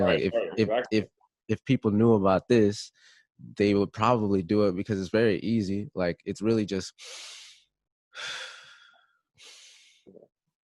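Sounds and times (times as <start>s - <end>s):
speech: 0.0s - 7.4s, 8.2s - 8.5s
deep breathing exercise, full inhale then relaxed exhale: 8.2s - 10.1s.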